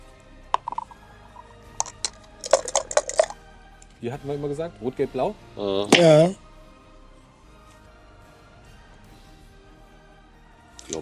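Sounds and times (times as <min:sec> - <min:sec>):
dice rattling and clattering on a hard surface: 0:00.6 - 0:03.4, 0:10.8 - 0:11.0
speech: 0:04.0 - 0:06.4.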